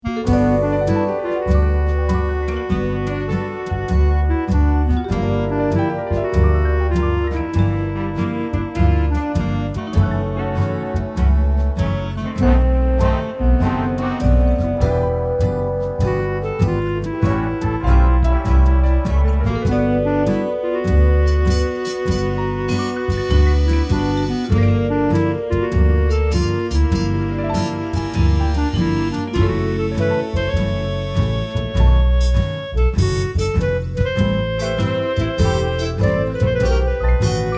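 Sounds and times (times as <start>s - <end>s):
soft clarinet ballad: 0.0s - 37.5s.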